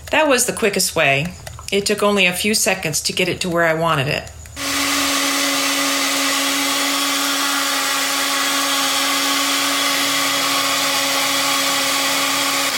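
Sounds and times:
speech: 0:00.1 - 0:04.4
blender running on lowest speed blending a mixture: 0:04.5 - 0:12.7.

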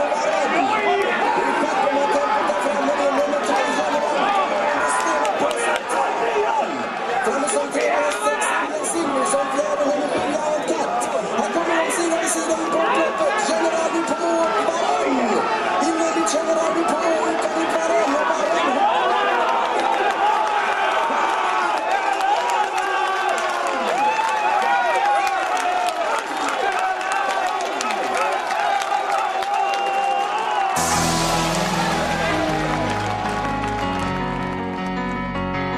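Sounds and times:
large crowd roaring and cheering at a horse race: 0:00.0 - 0:35.6.

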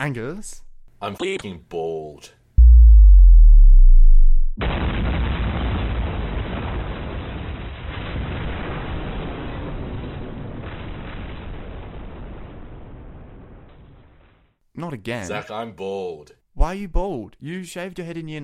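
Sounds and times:
speech: 0:00.0 - 0:02.4, 0:14.8 - 0:18.4
deep falling drone: 0:02.6 - 0:04.6
bomb blast: 0:02.6 - 0:07.2
roaring rumble of debris and crackle: 0:04.6 - 0:14.0.

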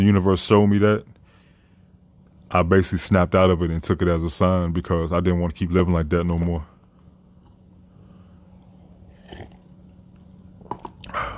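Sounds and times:
speech: 0:00.0 - 0:01.1, 0:02.5 - 0:06.7
person sipping and swallowing hot tea: 0:08.6 - 0:09.9.

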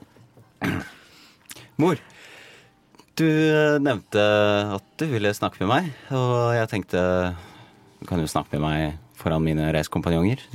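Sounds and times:
short rough throat clearing: 0:00.6 - 0:01.1
speech: 0:01.8 - 0:02.1, 0:03.2 - 0:10.5.

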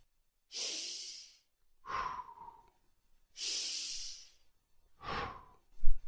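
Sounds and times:
deep breathing in through nose and out through mouth: 0:00.5 - 0:02.8, 0:03.4 - 0:04.4, 0:05.0 - 0:06.0.

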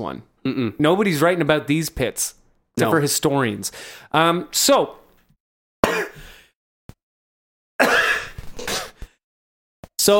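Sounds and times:
speech: 0:00.0 - 0:05.0
harsh raspy throaty coughing: 0:05.8 - 0:06.3, 0:07.8 - 0:09.0.

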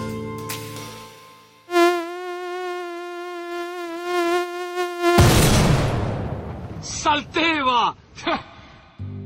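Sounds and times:
mosquito whine: 0:01.7 - 0:05.5
speech: 0:07.1 - 0:08.5
laughter: 0:08.2 - 0:08.7.

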